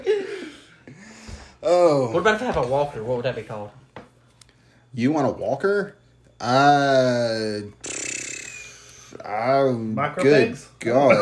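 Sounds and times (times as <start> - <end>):
speech: 1.6 - 3.8, 4.9 - 7.9, 9.3 - 11.2
voice-made fart noise: 7.8 - 8.9.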